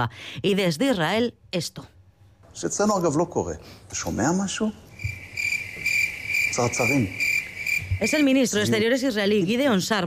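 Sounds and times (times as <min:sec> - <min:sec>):
speech: 0:00.0 - 0:02.0, 0:02.6 - 0:05.2, 0:06.6 - 0:07.3, 0:08.0 - 0:10.0
crickets chirping: 0:04.2 - 0:09.6.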